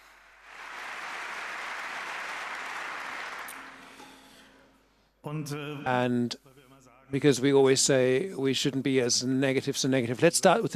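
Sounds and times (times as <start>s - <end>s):
crowd applauding: 0.0s - 4.0s
speech: 5.2s - 6.5s, 7.1s - 10.7s.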